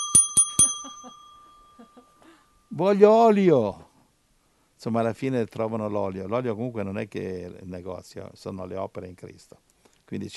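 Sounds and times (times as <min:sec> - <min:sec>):
bell ringing at a door: 0:00.0 - 0:02.2
speech: 0:02.7 - 0:03.8, 0:04.8 - 0:10.3.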